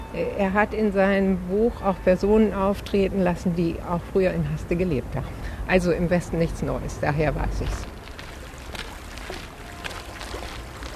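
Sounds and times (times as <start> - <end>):
small shallow river trickling with little water: 0.0 - 10.9
speech: 0.2 - 7.9
faint gurgles and splashes of river water: 7.6 - 10.9.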